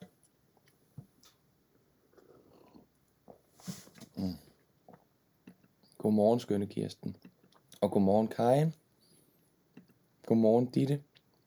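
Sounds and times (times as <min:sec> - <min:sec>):
sipping coffee from a cup: 0:02.1 - 0:05.1
brief hiss: 0:03.6 - 0:04.2
speech: 0:04.2 - 0:04.5, 0:06.1 - 0:08.8, 0:10.3 - 0:11.1.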